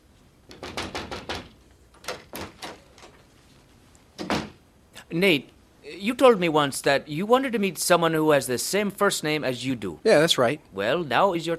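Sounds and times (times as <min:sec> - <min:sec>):
sharp knocks on a door: 0:00.5 - 0:01.6
speech: 0:05.1 - 0:11.5.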